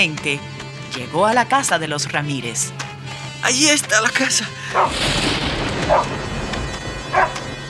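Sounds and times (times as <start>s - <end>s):
speech: 0.0s - 6.2s
dog barking: 4.7s - 5.0s, 5.9s - 6.1s, 7.1s - 7.4s.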